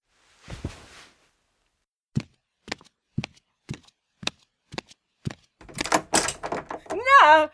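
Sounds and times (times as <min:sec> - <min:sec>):
knocking on a door: 0:05.6 - 0:07.2.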